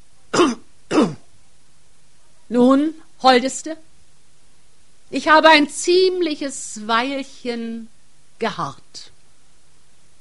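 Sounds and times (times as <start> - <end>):
man clearing his throat forcefully: 0.3 - 1.3
speech: 2.5 - 3.9, 5.1 - 9.1.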